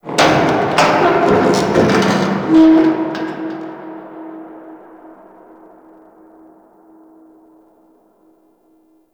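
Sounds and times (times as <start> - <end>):
distant ice and metal ambience: 0.0 - 7.4.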